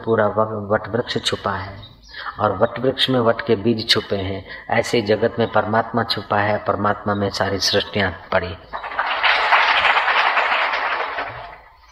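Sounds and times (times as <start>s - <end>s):
speech: 0.0s - 8.8s
crowd applauding: 8.7s - 11.9s.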